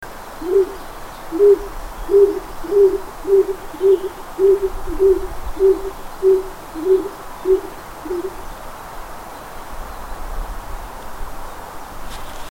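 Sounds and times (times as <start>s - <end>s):
stock dove: 0.4s - 8.4s.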